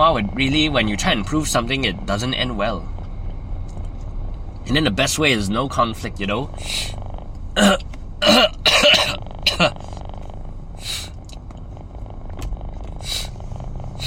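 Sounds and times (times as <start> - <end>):
speech: 0.0 - 2.9, 4.7 - 7.0, 7.6 - 8.6
snuffly breathing: 6.5 - 7.8, 8.9 - 11.3, 11.9 - 14.0
person with a runny nose clearing throat wetly: 7.6 - 10.0.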